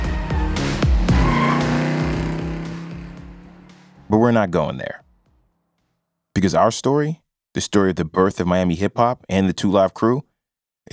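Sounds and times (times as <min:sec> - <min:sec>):
tire squeal: 0:00.0 - 0:03.9
convertible car engines revving on Ocean Drive in South Beach Miami: 0:00.0 - 0:04.6
speech: 0:04.1 - 0:05.1, 0:06.4 - 0:10.3.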